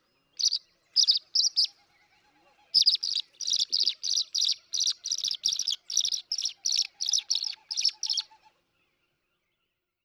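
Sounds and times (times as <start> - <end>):
tree swallow chirping: 0.4 - 1.7, 2.8 - 8.3.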